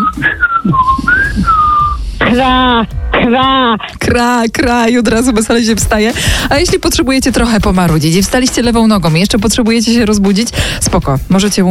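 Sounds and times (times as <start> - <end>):
person whistling a sliding bird-like call: 0.0 - 2.0
speech: 2.3 - 11.6.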